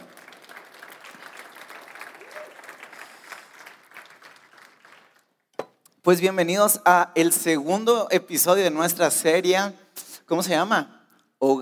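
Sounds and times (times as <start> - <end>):
audience applauding loudly: 0.0 - 5.4
speech: 6.0 - 11.6.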